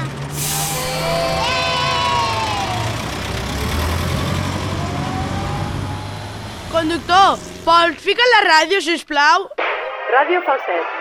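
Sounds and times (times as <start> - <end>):
bus engine rumbling: 0.0 - 8.4
bus air brakes releasing: 0.3 - 6.8
speech: 6.8 - 10.9.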